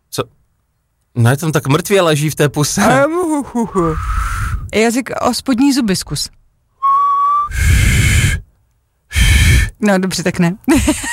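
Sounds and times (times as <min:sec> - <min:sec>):
speech: 0:00.2 - 0:00.4, 0:01.2 - 0:06.4, 0:09.8 - 0:11.1
loud breathy blowing with a faint tone: 0:03.7 - 0:04.7, 0:06.8 - 0:08.5, 0:09.1 - 0:09.8
person attempting to whistle during a morning radio broadcast: 0:06.8 - 0:08.4.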